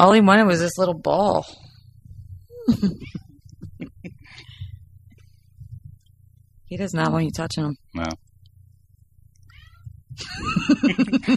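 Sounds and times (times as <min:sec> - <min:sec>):
speech: 0:00.0 - 0:01.6, 0:02.6 - 0:03.2, 0:06.7 - 0:08.2, 0:10.2 - 0:11.3
faint low hum: 0:00.0 - 0:11.3
cat meowing in a strained cry: 0:09.4 - 0:09.9
laughter: 0:10.2 - 0:11.3.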